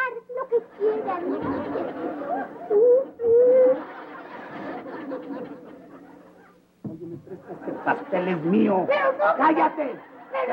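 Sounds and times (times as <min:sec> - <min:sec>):
laughter: 0:00.7 - 0:10.5
speech: 0:00.8 - 0:03.0, 0:07.5 - 0:10.5
person sobbing and murmuring: 0:02.6 - 0:04.0
person whimpering: 0:02.7 - 0:03.9.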